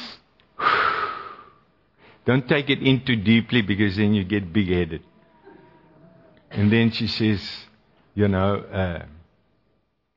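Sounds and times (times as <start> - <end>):
longer breathy exhale: 0.6 - 2.2
quick demonstrative sniff through the nose: 0.6 - 2.2
speech: 2.3 - 5.1, 6.6 - 9.2.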